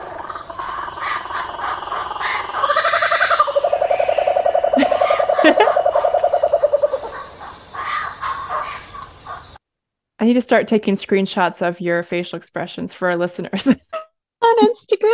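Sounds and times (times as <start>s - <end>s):
Laughing Kookaburra giving laughing call: 0.0s - 9.5s
speech: 5.4s - 5.8s, 10.2s - 13.9s.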